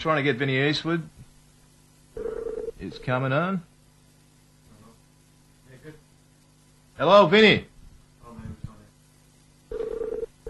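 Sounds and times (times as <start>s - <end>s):
speech: 0.0s - 1.2s, 2.8s - 3.7s, 7.0s - 7.7s
telephone ringback tone: 2.2s - 2.7s, 9.7s - 10.4s.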